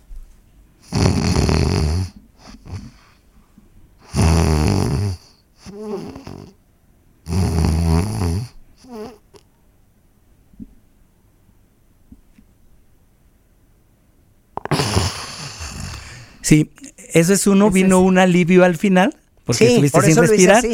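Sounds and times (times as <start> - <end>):
person imitating sleep apnea with rough snoring breaths: 0.8 - 3.2, 4.0 - 6.6, 7.3 - 9.4, 14.6 - 16.4
sudden deep exhalation: 14.6 - 16.5
speech: 16.5 - 20.7.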